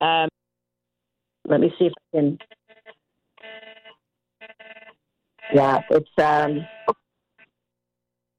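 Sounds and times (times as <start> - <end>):
speech: 1.5 - 2.6, 5.5 - 7.0
emergency alert tone on mobile phones: 2.4 - 7.0.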